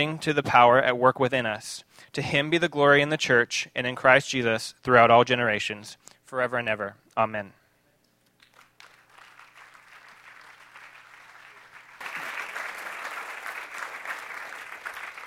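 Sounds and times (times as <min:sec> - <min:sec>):
speech: 0:00.0 - 0:07.6
audience applauding: 0:08.4 - 0:15.2.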